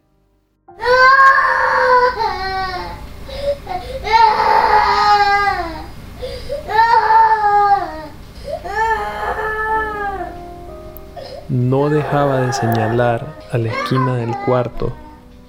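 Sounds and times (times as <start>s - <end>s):
four-year-old girl woken at night crying hysterically: 0.8s - 10.4s, 11.1s - 15.3s
speech: 11.7s - 15.0s.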